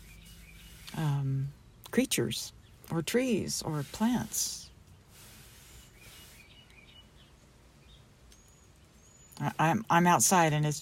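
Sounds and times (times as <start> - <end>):
birds chirping in short scattered calls outdoors: 0.0 - 10.8
steady wind: 0.0 - 10.8
speech: 2.0 - 4.6, 9.4 - 10.8.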